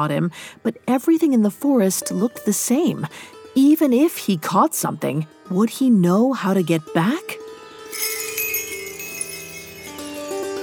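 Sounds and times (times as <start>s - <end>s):
speech: 0.0s - 7.4s
delicate tinkling bells: 7.9s - 10.6s.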